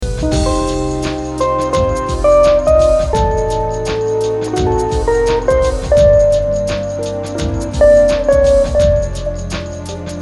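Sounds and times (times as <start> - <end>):
background music: 0.0 - 10.2.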